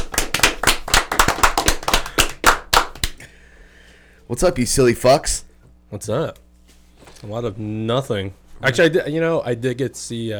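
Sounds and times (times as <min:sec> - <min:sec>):
hands clapping: 0:00.0 - 0:03.3
speech: 0:04.3 - 0:06.4, 0:07.2 - 0:10.3.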